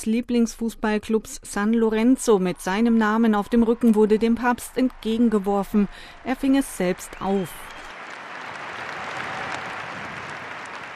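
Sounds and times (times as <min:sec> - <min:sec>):
speech: 0:00.0 - 0:07.7
faint cheering: 0:02.7 - 0:10.9
large crowd applauding: 0:02.7 - 0:10.9.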